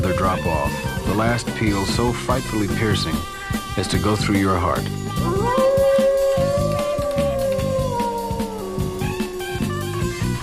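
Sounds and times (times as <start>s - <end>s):
low rhythmic thumping: 0.0s - 10.4s
speech: 0.1s - 5.6s
wolf howling: 5.1s - 10.4s.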